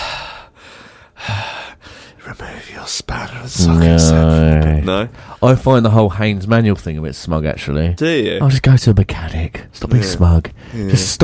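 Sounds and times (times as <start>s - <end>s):
speech: 2.9s - 11.2s
person imitating a woman's heavy mouth breathing: 3.6s - 5.0s.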